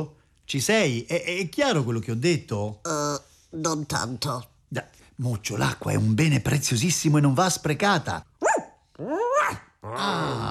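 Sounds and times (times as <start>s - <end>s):
speech: 0.0s - 8.3s, 9.0s - 10.4s
dog yelping: 8.4s - 9.8s.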